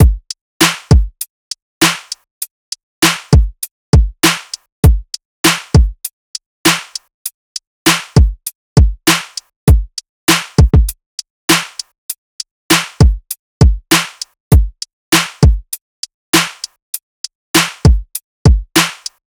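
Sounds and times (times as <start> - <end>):
full drum loop from a drum sample pack: 0.0 - 1.1, 1.8 - 2.1, 3.0 - 6.0, 6.7 - 7.0, 7.9 - 11.8, 12.7 - 15.7, 16.4 - 16.6, 17.6 - 19.1.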